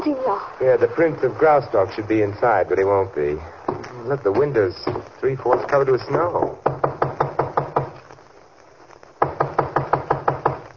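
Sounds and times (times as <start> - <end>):
speech: 0.2 - 6.8
firm knocking on a wooden studio door: 6.4 - 8.0, 9.2 - 10.7.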